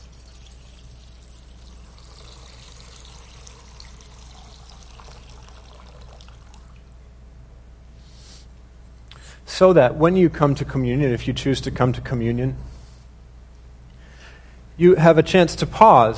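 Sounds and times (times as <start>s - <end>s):
baptismal water pouring into a baptismal font in a church: 0.0s - 7.0s
speech: 9.6s - 12.7s, 14.8s - 16.1s.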